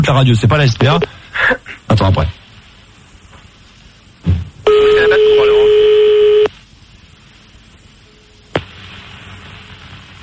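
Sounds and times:
speech: 0.0s - 2.4s
quiet hiss: 0.0s - 10.2s
low thump: 4.2s - 4.5s
fax machine tones over a phone line: 4.7s - 6.5s.

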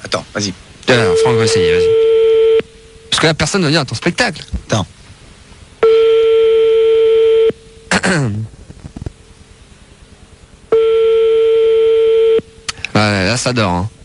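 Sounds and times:
speech: 0.0s - 2.0s, 3.2s - 5.0s, 8.0s - 8.6s, 13.0s - 14.0s
telephone ringing down the line during a call: 0.9s - 3.1s, 5.8s - 7.6s, 10.7s - 12.4s.

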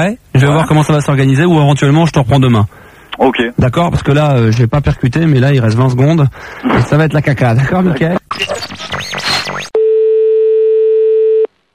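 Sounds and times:
speech: 0.0s - 9.1s
telephone ringing tone while calling a friend: 9.8s - 11.5s.

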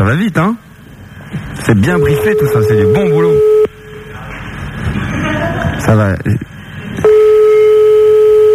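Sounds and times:
speech: 0.0s - 0.6s, 1.3s - 3.5s, 5.8s - 7.2s
ringing tone of an outgoing telephone call: 1.9s - 3.7s, 7.1s - 8.5s.

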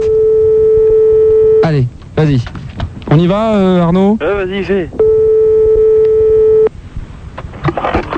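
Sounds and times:
telephone tone on an outgoing live call from a radio studio: 0.0s - 1.7s, 5.0s - 6.7s
speech: 2.2s - 5.0s.

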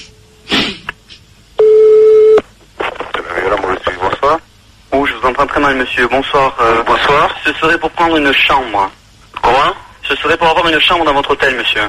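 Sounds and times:
telephone line tone while placing a call: 1.6s - 2.4s
speech: 4.3s - 11.8s.

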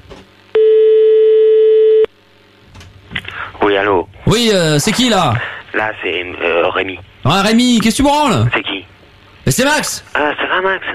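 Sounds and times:
ringback tone on an outgoing telephone call: 0.6s - 2.1s
speech: 3.7s - 10.9s.

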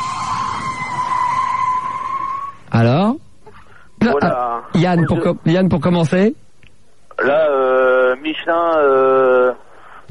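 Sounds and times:
car tires squealing: 0.0s - 2.7s
rough rumble of the road: 0.0s - 2.8s
speech: 4.8s - 6.5s, 7.2s - 9.6s.

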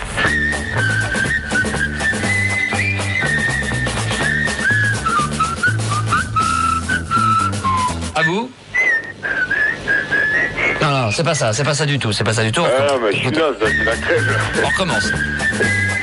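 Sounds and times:
band accompaniment with thumping bass and rhythmic percussion: 0.0s - 10.9s, 13.2s - 16.0s
whistled march melody: 0.0s - 10.9s, 13.5s - 16.0s
speech: 8.2s - 8.6s, 11.1s - 15.8s.

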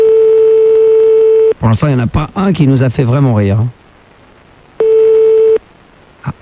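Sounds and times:
telephone ringback tone of a call ringing toward an answering machine: 0.0s - 1.5s, 4.8s - 5.6s
speech: 1.6s - 3.8s.

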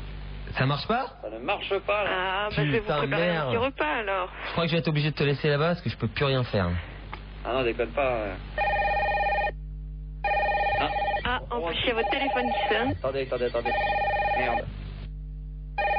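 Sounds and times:
speech: 0.6s - 8.7s, 11.6s - 14.8s
telephone ringing in electronic bursts: 8.6s - 9.6s, 10.2s - 14.7s, 15.8s - 15.9s.

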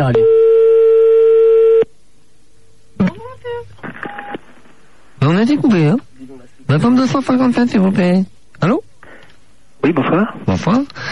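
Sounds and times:
speech: 0.0s - 0.4s, 5.2s - 8.8s, 9.9s - 11.0s
telephone ringing tone on an outgoing call: 0.1s - 1.8s.

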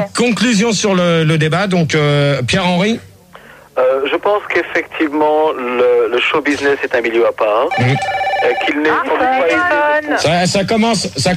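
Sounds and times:
speech: 0.2s - 3.1s, 3.8s - 11.3s
telephone ringtone playing a loud continuous warbling melody: 7.7s - 9.6s.

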